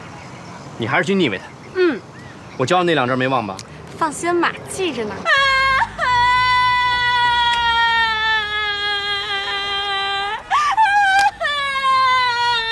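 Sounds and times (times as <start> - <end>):
speech: 0.8 - 5.5
woman crying and wailing: 5.2 - 12.7.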